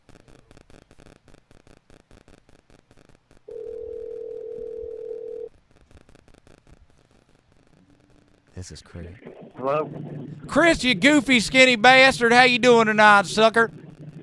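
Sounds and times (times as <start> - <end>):
telephone ringing: 3.5 - 5.5
speech: 8.6 - 13.8
busy rhythmic noise: 9.2 - 14.2.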